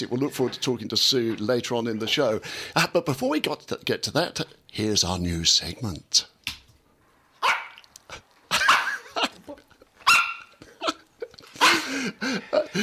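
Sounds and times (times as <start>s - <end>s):
speech: 0.0s - 6.4s, 12.0s - 12.8s
small dog yapping: 7.4s - 7.8s, 10.0s - 10.5s
laughter: 8.5s - 10.0s, 10.6s - 12.8s.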